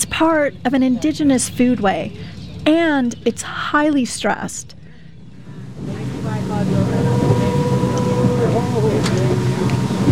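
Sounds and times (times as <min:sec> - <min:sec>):
speech: 0:00.2 - 0:04.8
small motorboat engine droning while moving across water: 0:05.2 - 0:10.1.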